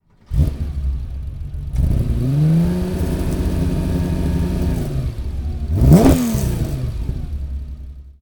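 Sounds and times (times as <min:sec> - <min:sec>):
Porsche 911 RS engine starting: 0:00.0 - 0:08.1.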